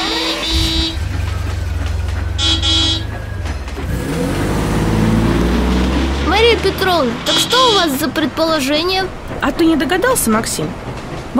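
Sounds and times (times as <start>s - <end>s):
car horn honking: 0.0s - 1.3s, 2.4s - 3.2s, 7.2s - 8.0s
car engine rumbling and revving as the vehicle pulls away: 0.0s - 9.4s
speech: 6.8s - 11.3s.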